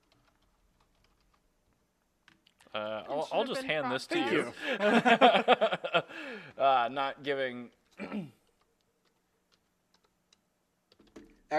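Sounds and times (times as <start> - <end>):
typing on a keyboard: 0.0 - 2.8, 7.7 - 11.5
speech: 2.8 - 8.4
laughter: 4.1 - 6.4.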